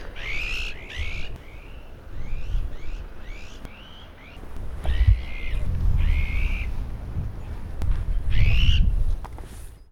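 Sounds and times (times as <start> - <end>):
azure-winged magpie calling: 0.0 - 6.8, 8.3 - 9.0.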